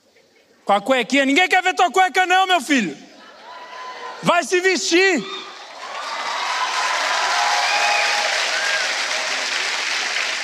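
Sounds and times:
speech: 0.7 - 3.1, 4.2 - 5.4
audience applauding: 5.5 - 10.4.

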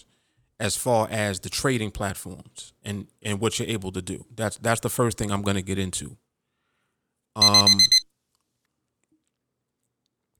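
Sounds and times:
speech: 0.0 - 6.2, 7.4 - 8.0
electronic timer alarm beeps: 7.4 - 8.0.

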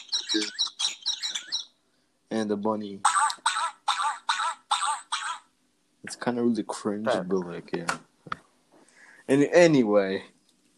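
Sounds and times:
recorded bird chirping from a toy sound book: 0.0 - 5.5
speech: 2.4 - 3.2, 6.2 - 8.1, 9.3 - 10.4.

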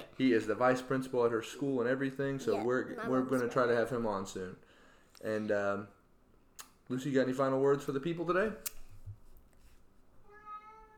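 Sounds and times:
speech: 0.2 - 6.0, 6.9 - 8.7
house cat meowing: 10.3 - 10.9.

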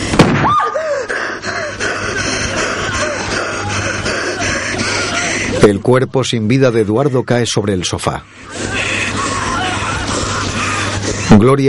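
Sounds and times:
pistol shot fired with the gun pressed against a man's neck: 0.1 - 0.6
laughter: 0.7 - 5.8, 8.3 - 11.6
speech: 5.7 - 8.7, 11.3 - 11.6.

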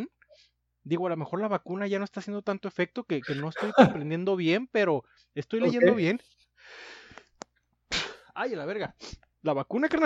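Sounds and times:
speech: 0.8 - 7.0, 8.4 - 10.0
sharp explosive sneeze: 3.2 - 3.9, 7.9 - 8.3
laughter: 3.2 - 4.1
long hissy intake of breath: 6.6 - 7.4.

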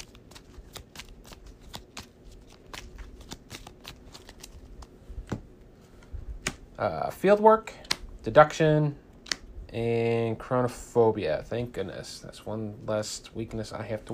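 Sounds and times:
deck of cards being shuffled during a card game: 0.0 - 5.4
speech: 6.8 - 9.0, 9.7 - 14.1.

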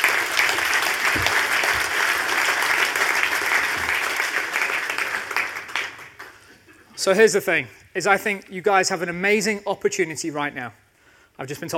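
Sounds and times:
audience applause: 0.0 - 6.5
speech: 7.0 - 10.8, 11.4 - 11.7.

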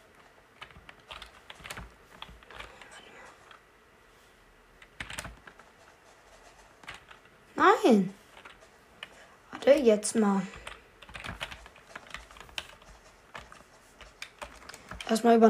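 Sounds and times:
computer keyboard keys clicking during a video game: 0.0 - 3.6, 4.8 - 5.7, 6.4 - 7.3, 8.3 - 9.9, 10.5 - 15.2
speech: 7.9 - 8.2, 9.7 - 10.6, 15.1 - 15.4.

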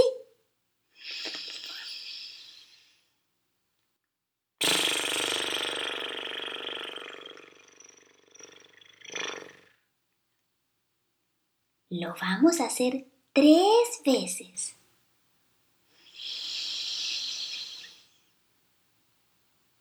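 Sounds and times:
person blowing air through fluttering lips imitating a horse: 1.0 - 3.0, 4.6 - 7.6, 16.0 - 18.2
speech: 11.9 - 14.8.

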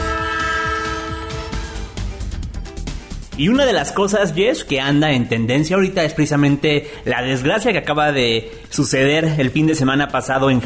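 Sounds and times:
train horn jingle with multi-tone horn chords over chugging beat: 0.0 - 2.0
speech: 3.4 - 10.6.

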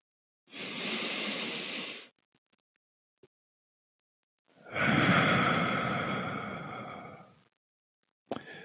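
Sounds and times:
slow deep breathing: 0.5 - 2.1, 4.6 - 7.4.

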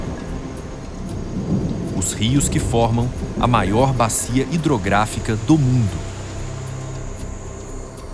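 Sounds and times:
rain in a forest: 0.0 - 8.1
speech: 2.0 - 6.1.

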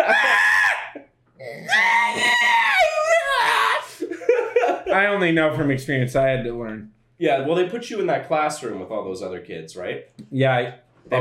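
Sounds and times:
owl screeching: 0.0 - 3.9
laughter: 3.9 - 5.2
speech: 4.9 - 11.2.

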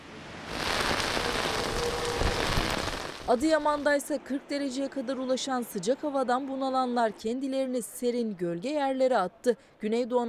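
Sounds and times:
heavy rain pattering on hard surfaces: 0.0 - 3.6
speech: 3.3 - 10.2.

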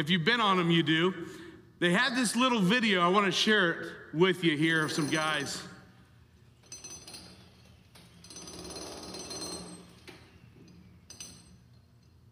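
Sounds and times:
speech: 0.0 - 5.7
jackhammer chipping concrete roof: 8.2 - 9.8.

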